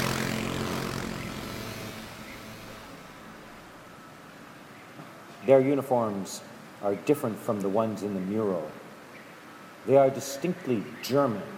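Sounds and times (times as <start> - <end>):
patrol motorcycle engine droning through a square: 0.0 - 4.0
speech: 5.4 - 8.8, 9.8 - 11.5.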